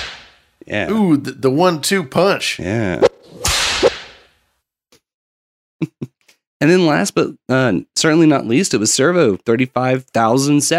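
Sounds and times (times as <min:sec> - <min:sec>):
sharp whip crack: 0:00.0 - 0:00.4, 0:03.0 - 0:04.3
speech: 0:00.7 - 0:03.1, 0:06.6 - 0:10.7.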